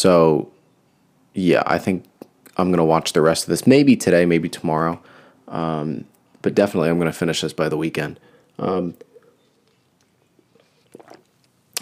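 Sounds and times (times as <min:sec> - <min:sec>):
speech: 0:00.0 - 0:00.5, 0:01.4 - 0:09.1
person sipping water with slurping and swallowing: 0:09.0 - 0:11.8.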